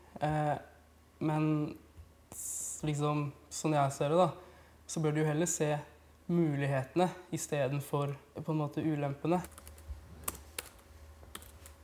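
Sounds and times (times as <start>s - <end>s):
faint low hum: 0.0s - 11.8s
speech: 0.2s - 9.6s
typing on a laptop keyboard: 9.4s - 11.8s.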